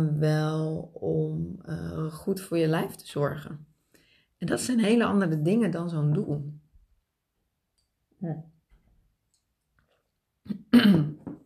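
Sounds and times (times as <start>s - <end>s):
speech: 0.0s - 3.7s, 4.4s - 6.6s, 8.2s - 8.5s
throat clearing: 10.5s - 11.4s.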